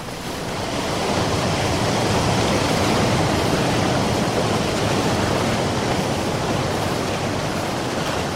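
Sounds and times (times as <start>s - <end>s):
ocean surf breaking against a shore surrounded by cliffs: 0.0s - 8.3s
wind: 0.0s - 8.3s.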